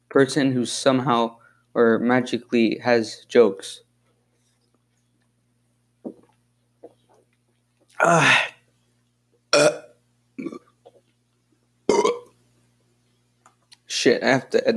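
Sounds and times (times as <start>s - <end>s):
speech: 0.1s - 3.8s, 8.0s - 8.5s, 14.0s - 14.7s
person burping: 7.9s - 8.6s, 9.5s - 10.8s, 11.9s - 12.3s
throaty vocal noises: 7.9s - 8.6s.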